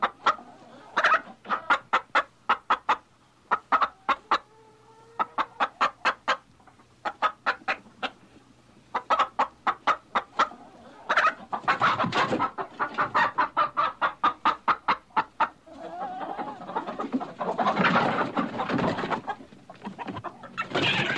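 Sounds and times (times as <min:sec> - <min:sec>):
chicken clucking: 0:00.0 - 0:21.1.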